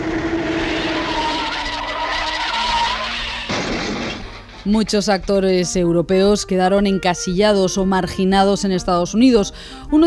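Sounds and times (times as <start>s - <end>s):
car tires skidding in a traffic accident: 0.0s - 4.6s
rushing engine noise: 0.0s - 4.7s
speech: 4.7s - 10.0s.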